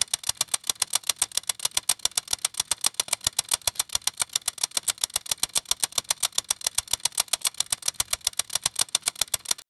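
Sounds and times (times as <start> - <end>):
mechanical logic puzzle: 0.0 - 9.6.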